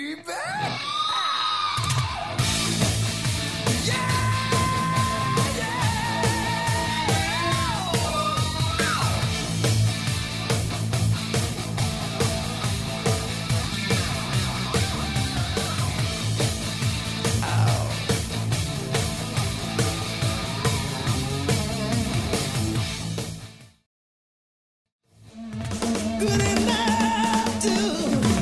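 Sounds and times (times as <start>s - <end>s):
high screaming lead vocal: 0.2s - 2.8s, 3.7s - 9.2s, 17.4s - 18.1s, 26.2s - 28.4s
hard rock song from a 1986 LP on a record player: 1.7s - 23.6s, 25.6s - 28.4s
pounding drums: 2.4s - 22.5s, 25.6s - 28.4s.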